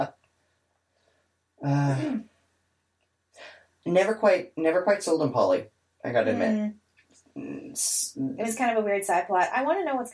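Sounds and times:
drawn-out voiced yawn: 1.6 - 2.2
speech: 1.6 - 2.3, 3.8 - 6.8, 7.4 - 10.1.

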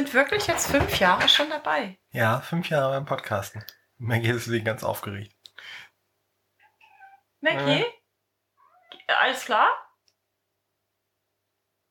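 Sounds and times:
speech: 0.0 - 5.8, 7.4 - 8.0, 9.1 - 9.8
cat meowing: 6.6 - 8.0, 8.6 - 9.1.

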